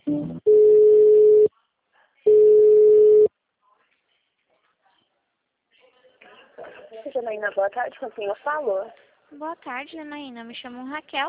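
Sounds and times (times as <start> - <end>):
telephone ringback tone while a call is being transferred: 0.5 - 1.5, 2.3 - 3.3
speech: 7.4 - 11.2.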